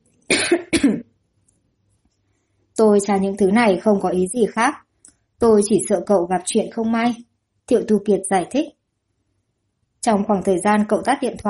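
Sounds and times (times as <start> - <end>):
man giving short dry coughs: 0.3 - 1.1
speech: 2.8 - 4.8, 5.4 - 8.8, 10.0 - 11.4.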